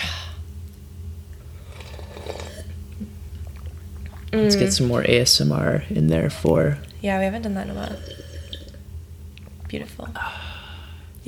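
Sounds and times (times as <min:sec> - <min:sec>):
steady low hum: 0:00.0 - 0:11.2
two people slurping drinks: 0:01.6 - 0:05.0, 0:07.7 - 0:08.8
speech: 0:04.3 - 0:08.3, 0:09.7 - 0:10.6.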